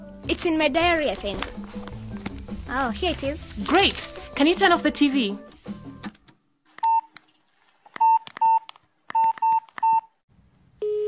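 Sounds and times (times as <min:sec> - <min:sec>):
speech: 0:00.2 - 0:02.0, 0:02.7 - 0:05.5
dual-tone keypad beeps of a phone number being dialed: 0:08.0 - 0:10.1.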